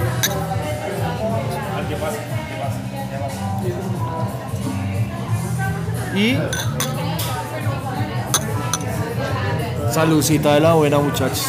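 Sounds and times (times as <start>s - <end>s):
beer glasses clinking in a toast: 0.0s - 0.5s, 6.5s - 7.1s, 8.3s - 9.0s
busy murmur of voices: 0.0s - 11.4s
speech: 6.2s - 6.7s, 10.0s - 11.4s.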